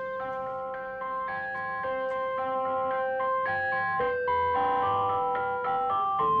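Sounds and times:
tinny chiming ice cream truck melody in a minor key: 0.0 - 6.3.

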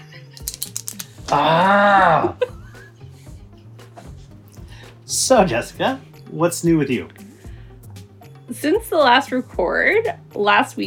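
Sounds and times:
ballpoint pen clicking: 0.4 - 1.1
speech: 1.3 - 2.4, 5.1 - 7.3, 8.6 - 10.8.

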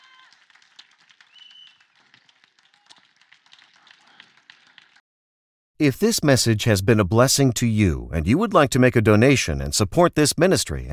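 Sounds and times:
audience applauding with hand claps: 0.0 - 5.0
speech: 5.8 - 10.9.

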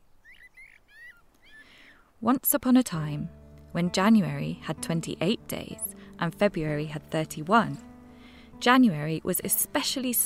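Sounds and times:
blackbird singing fluting whistled notes: 0.2 - 1.7
speech: 2.2 - 7.9, 8.6 - 10.2.

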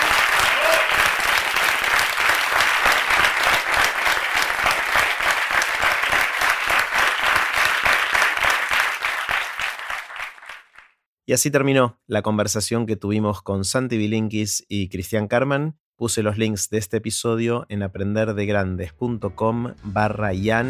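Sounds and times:
audience applause: 0.0 - 11.0
speech: 11.3 - 20.6.

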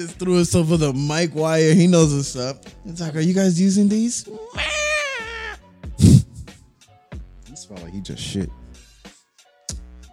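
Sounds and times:
speech: 0.0 - 4.8, 7.7 - 8.6
cat meowing: 4.4 - 5.6.

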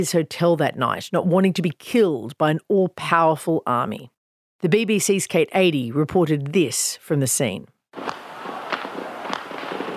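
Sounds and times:
speech: 0.0 - 8.2
steady noisy outdoor background: 0.0 - 9.9
gunshots in city streets: 8.0 - 9.9.

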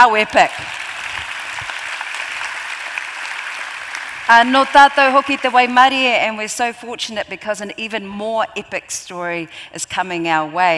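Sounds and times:
speech: 0.0 - 0.8, 4.3 - 10.7
crowd applauding: 0.3 - 5.7.

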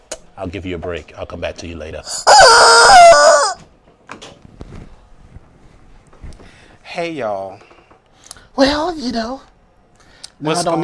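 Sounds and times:
speech: 0.4 - 2.9, 7.0 - 7.7, 8.6 - 9.5, 10.4 - 10.8
little chicken crowing: 2.1 - 3.6
quiet knocks and clattering: 3.6 - 6.6, 7.5 - 8.1.

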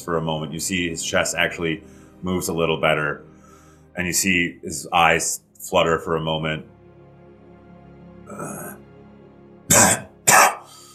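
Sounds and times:
speech: 0.0 - 3.3, 4.0 - 6.8, 8.3 - 8.7
voice imitating a cough: 9.7 - 10.7.

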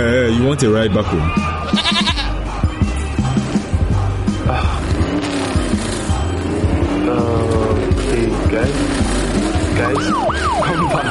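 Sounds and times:
speech: 0.0 - 2.0, 8.5 - 9.0, 9.8 - 11.0
goat bleating in wavering nasal cries: 1.6 - 2.4
rumbling engine noise: 3.2 - 11.0.

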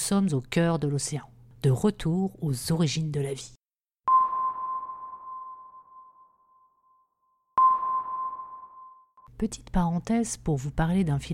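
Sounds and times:
speech: 0.1 - 3.6, 9.4 - 11.3
sonar-like piano pings through Leslie speaker: 4.1 - 9.3.

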